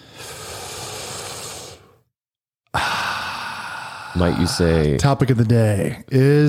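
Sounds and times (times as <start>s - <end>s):
deep slow deliberate breathing: 0.0s - 2.1s, 2.7s - 4.8s
speech: 4.2s - 6.4s.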